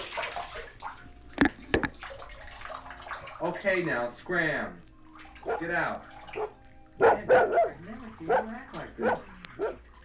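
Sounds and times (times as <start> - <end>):
dog splashing with its paws in a bathtub: 0.0 - 1.2, 1.9 - 3.9, 5.1 - 10.0
water sloshing in a bathtub: 0.0 - 10.0
speech: 3.4 - 9.8.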